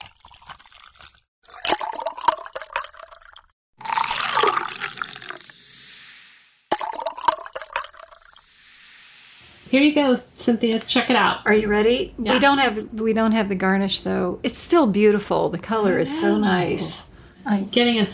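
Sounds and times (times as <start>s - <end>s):
cocktail strained and poured into glasses: 0.0s - 6.1s, 6.7s - 8.4s
sparkling water poured and fizzing: 0.2s - 10.2s
speech: 9.7s - 18.1s.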